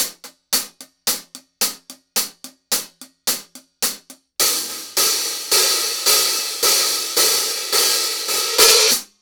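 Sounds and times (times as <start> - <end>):
X-Series hi-hats: 0.0 - 9.1.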